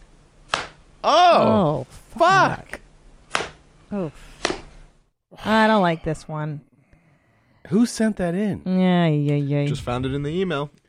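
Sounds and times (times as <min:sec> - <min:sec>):
open hand slap to the face: 0:00.5 - 0:00.8, 0:03.3 - 0:03.6, 0:04.4 - 0:04.7
speech: 0:01.0 - 0:02.6, 0:03.9 - 0:04.4, 0:05.4 - 0:06.7, 0:07.6 - 0:10.8.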